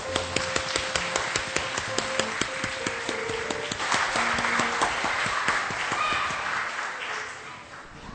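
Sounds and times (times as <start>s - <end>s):
held musical tone: 0.0s - 6.0s
audience applause: 0.0s - 8.0s.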